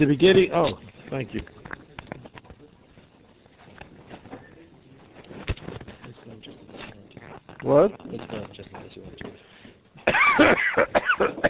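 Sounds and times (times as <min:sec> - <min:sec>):
speech: 0:00.0 - 0:01.6, 0:07.6 - 0:09.5, 0:10.4 - 0:11.4
person clearing throat: 0:10.0 - 0:11.4
person coughing: 0:10.0 - 0:11.4.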